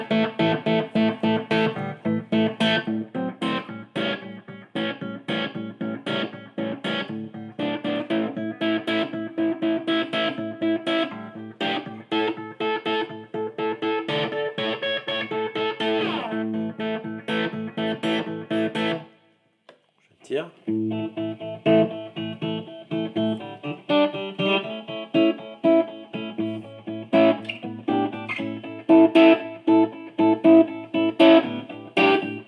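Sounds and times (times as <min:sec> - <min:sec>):
distorted self-built electric guitar playing chords and riffs: 0:00.0 - 0:19.1, 0:20.7 - 0:32.4.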